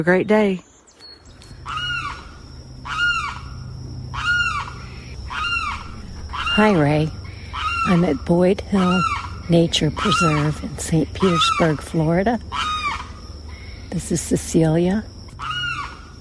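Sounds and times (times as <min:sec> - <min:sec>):
speech: 0:00.0 - 0:00.7, 0:06.6 - 0:07.2, 0:07.8 - 0:12.7, 0:13.9 - 0:15.1
faint hum: 0:00.0 - 0:16.1
limpkin calling loudly atop a bush in St. Petersburg, Florida: 0:01.6 - 0:14.1, 0:15.3 - 0:16.1.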